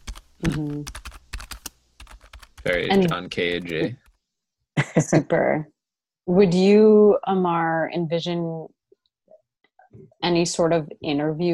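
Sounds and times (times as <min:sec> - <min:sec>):
computer keyboard keys clunking: 0:00.0 - 0:04.2
speech: 0:00.4 - 0:01.0, 0:02.6 - 0:04.0, 0:05.0 - 0:05.7, 0:06.3 - 0:08.8, 0:10.0 - 0:11.5.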